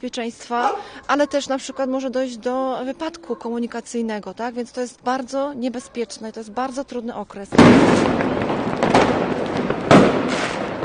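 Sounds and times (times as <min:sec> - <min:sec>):
speech: 0:00.0 - 0:08.7
fireworks and firecrackers banging: 0:07.5 - 0:10.8.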